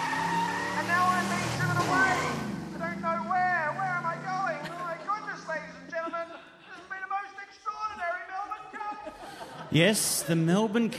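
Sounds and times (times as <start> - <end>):
car engine revving hard: 0.0 - 6.0
tires squealing and skidding: 0.0 - 6.0
laughter: 4.0 - 10.9
speech: 9.7 - 10.9.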